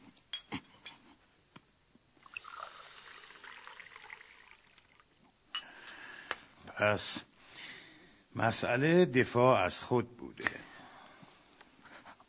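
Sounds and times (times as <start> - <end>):
glass clinking: 0.3 - 1.0, 5.5 - 6.0
water pouring into a glass: 2.2 - 5.2
speech: 6.8 - 7.3, 8.4 - 10.5.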